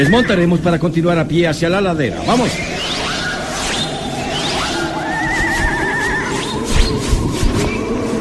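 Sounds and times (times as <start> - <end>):
speech: 0.0 - 2.8
wind rushing: 1.9 - 8.1
horses neighing while being led: 5.0 - 6.5.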